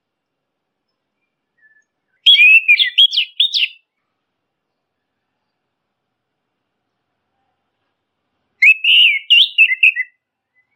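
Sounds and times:
Orange-headed thrush singing a training song: 0.9s - 4.0s, 8.6s - 10.7s.

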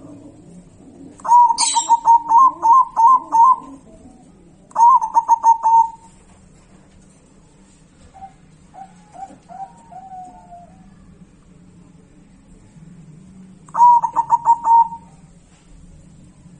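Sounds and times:
zebra dove cooing: 0.0s - 6.3s, 8.0s - 11.3s, 13.7s - 15.4s.

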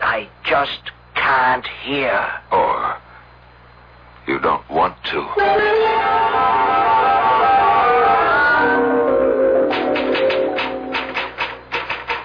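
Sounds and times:
speech: 0.2s - 3.0s, 4.3s - 6.6s
sustained tonal passage: 5.4s - 11.4s
typewriter keys clacking out a letter: 9.7s - 12.2s.

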